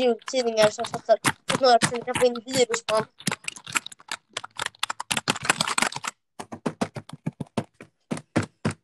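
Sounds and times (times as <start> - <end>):
speech: 0.0 - 3.3
typing on a computer keyboard: 0.0 - 8.8.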